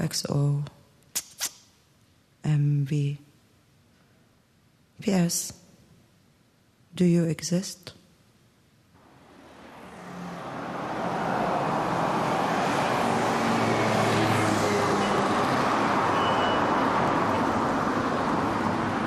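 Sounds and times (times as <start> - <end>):
speech: 0.1 - 0.8, 2.4 - 3.3, 5.0 - 5.6, 7.0 - 8.0
dense city street traffic of cars and trucks at a traffic light: 9.0 - 19.0.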